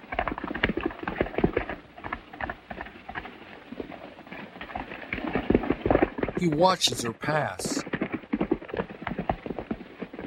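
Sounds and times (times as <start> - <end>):
horse hooves clip-clopping: 0.0 - 6.3, 7.8 - 10.2
speech: 6.4 - 7.9.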